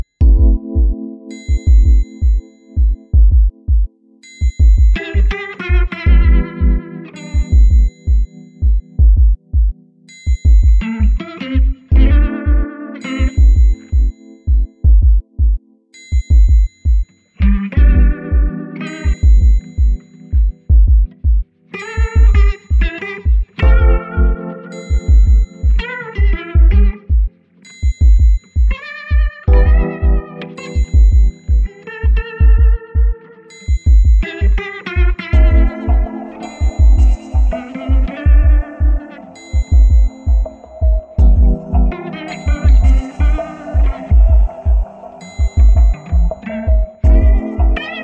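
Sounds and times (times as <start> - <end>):
chill guitar beat: 0.2 - 48.0.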